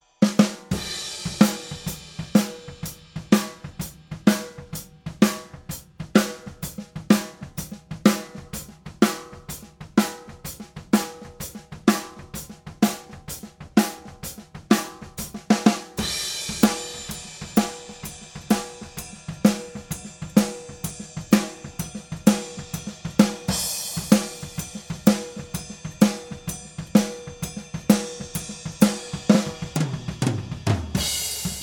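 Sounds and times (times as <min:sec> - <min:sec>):
snare drum recorded with overhead and snare microphones: 0:00.2 - 0:31.6.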